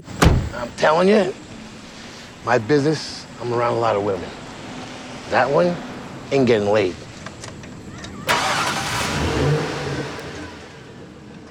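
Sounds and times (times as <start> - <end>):
car engine turning over and starting: 0.0 - 0.7, 8.3 - 10.6
speech: 0.0 - 1.4, 2.4 - 4.4, 5.3 - 7.0
car engine revving as the vehicle pulls away: 8.3 - 11.0.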